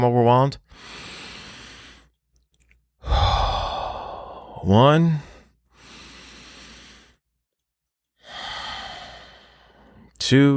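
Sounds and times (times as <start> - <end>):
speech: 0.0 - 1.1, 4.6 - 5.3, 10.3 - 10.5
deep breaths: 0.7 - 2.2, 3.0 - 7.2, 8.2 - 10.2.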